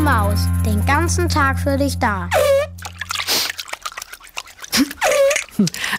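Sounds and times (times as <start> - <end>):
speech: 0.2 - 2.6
feet splashing and sloshing in a shallow basin of water: 2.3 - 5.9.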